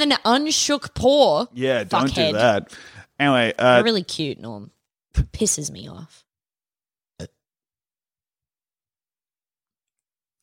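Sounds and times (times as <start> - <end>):
speech: 0.0 - 6.2
short quiet burp into the microphone: 7.2 - 7.4.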